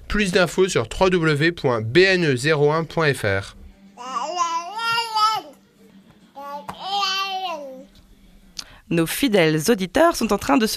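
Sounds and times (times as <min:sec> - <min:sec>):
speech: 0:00.1 - 0:03.6, 0:08.9 - 0:10.7
baby babbling: 0:04.0 - 0:05.6, 0:06.4 - 0:07.9.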